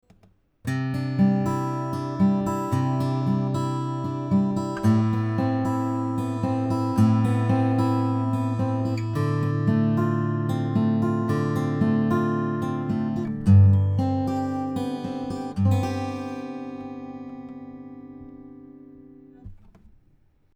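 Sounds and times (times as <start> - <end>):
guitar test: 0.0 - 20.5.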